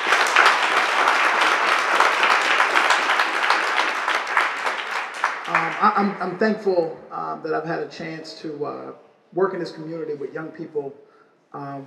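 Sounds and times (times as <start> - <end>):
crowd applauding: 0.0 - 6.4
speech: 5.8 - 11.8.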